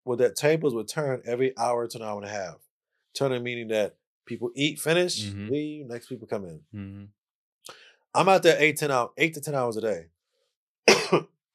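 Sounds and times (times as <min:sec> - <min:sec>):
speech: 0:00.1 - 0:10.2, 0:10.9 - 0:11.4
harsh cough from chips stuck in throat: 0:10.9 - 0:11.2.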